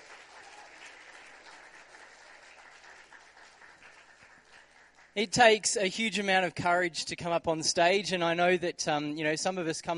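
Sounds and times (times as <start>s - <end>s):
audience applauding for panelists: 0.0s - 5.4s
speech: 5.2s - 9.9s.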